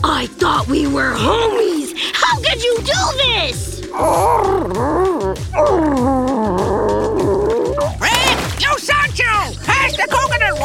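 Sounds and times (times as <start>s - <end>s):
speech: 0.2s - 7.6s
dog growling and yipping: 3.8s - 8.5s, 9.7s - 10.6s.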